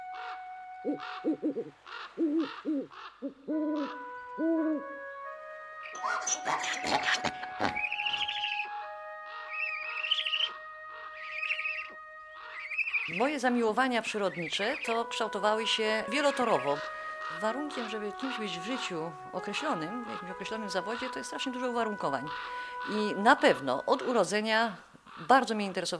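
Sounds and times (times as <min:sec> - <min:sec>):
owl hooting: 0:00.2 - 0:04.9, 0:05.9 - 0:13.5, 0:16.0 - 0:25.7
speech: 0:00.8 - 0:05.0, 0:06.0 - 0:07.8, 0:13.1 - 0:25.9
shrill whistling notes: 0:05.8 - 0:13.4.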